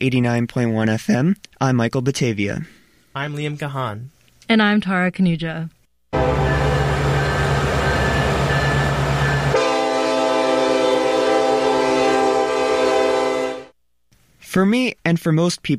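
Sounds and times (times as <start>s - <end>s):
speech: 0.0s - 6.4s, 14.5s - 15.7s
freight train whistle: 6.2s - 13.8s.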